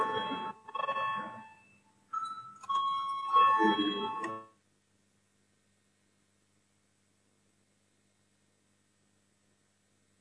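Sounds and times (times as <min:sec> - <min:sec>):
electronic parliament voting call bell chiming: 0:00.0 - 0:04.5.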